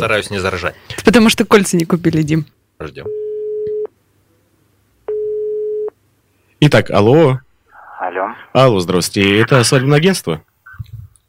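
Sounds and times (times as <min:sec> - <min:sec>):
speech: 0:00.0 - 0:03.2, 0:06.6 - 0:10.5
telephone line tone while dialing a wedding agency: 0:05.1 - 0:05.9.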